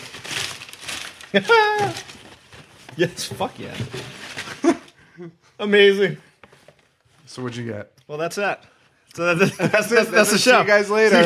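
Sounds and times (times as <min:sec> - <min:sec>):
wrapping paper crinkling as a gift in a small box is unwrapped: 0:00.0 - 0:04.8
speech: 0:01.3 - 0:02.1, 0:03.0 - 0:06.3, 0:07.3 - 0:11.2
person exclaiming: 0:01.4 - 0:02.1
laughter: 0:09.3 - 0:10.6.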